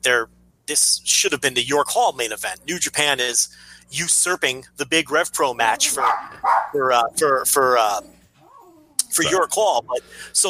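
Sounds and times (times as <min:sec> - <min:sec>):
speech: 0:00.0 - 0:08.2, 0:09.1 - 0:10.4
dog at the end of the block barking frantically: 0:05.7 - 0:06.8.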